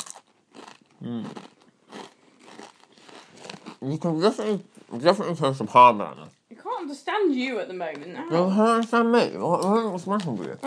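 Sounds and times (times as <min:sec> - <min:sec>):
crisp snack being chewed: 0:00.0 - 0:04.0
speech: 0:01.0 - 0:01.5, 0:03.8 - 0:10.6.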